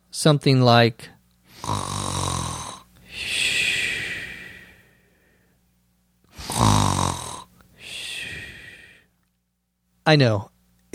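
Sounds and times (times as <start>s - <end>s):
speech: 0.2s - 2.0s, 10.1s - 10.9s
man snoring: 1.5s - 4.8s, 6.3s - 9.0s.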